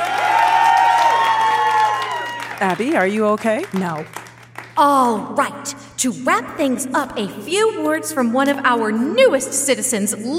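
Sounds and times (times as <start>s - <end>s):
whoops: 0.0s - 2.6s
crowd applauding and cheering: 0.0s - 4.8s
speech: 2.6s - 4.2s, 4.8s - 10.3s.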